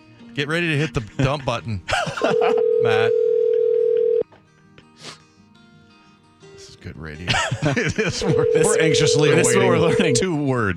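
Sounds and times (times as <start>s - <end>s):
speech: 0.4s - 3.2s, 6.8s - 10.7s
laughter: 0.8s - 3.1s, 7.3s - 10.2s
landline phone ringing: 2.3s - 4.2s, 8.2s - 10.3s.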